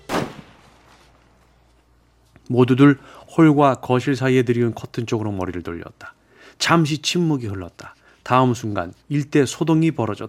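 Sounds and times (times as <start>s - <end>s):
gunshot inside a house: 0.0s - 1.0s
speech: 2.5s - 10.2s.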